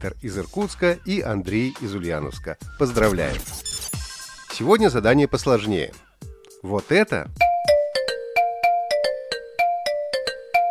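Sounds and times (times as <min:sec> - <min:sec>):
speech: 0:00.0 - 0:03.6, 0:04.6 - 0:06.0, 0:06.6 - 0:07.4
app incoming call ringtone with bright electronic bell-like melody: 0:03.8 - 0:04.9, 0:07.4 - 0:10.6.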